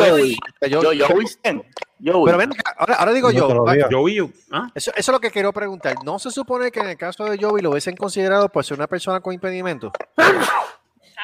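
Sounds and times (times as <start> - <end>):
speech: 0.1 - 11.2
person sneezing sharply: 10.2 - 10.9.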